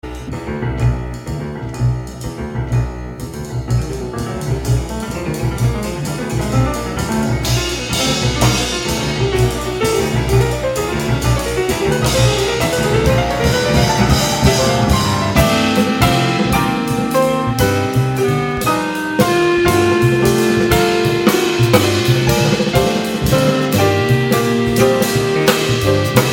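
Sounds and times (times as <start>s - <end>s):
waltz variations: 0.0s - 26.3s.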